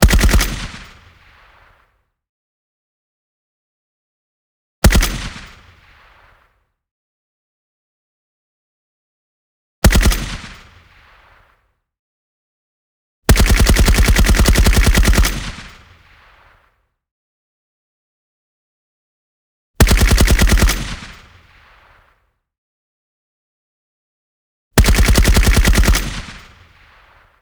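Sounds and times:
M1919 machine gun auto-burst fire: 0.0s - 0.8s, 9.9s - 10.6s, 13.3s - 15.7s, 19.8s - 21.2s, 24.8s - 26.6s.

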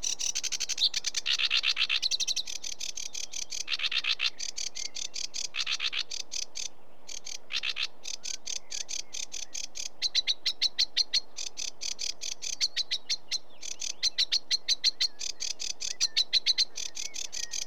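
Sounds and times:
sedge warbler singing: 0.0s - 17.6s.

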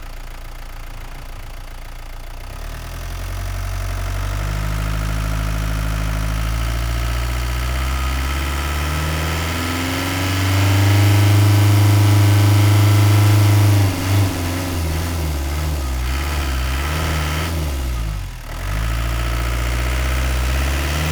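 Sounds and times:
Renault Master 2.8dTi engine accelerating: 0.0s - 21.0s.

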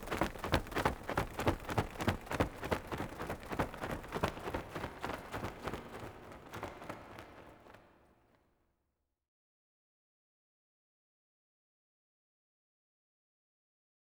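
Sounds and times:
winged monster flying away: 0.2s - 8.1s.

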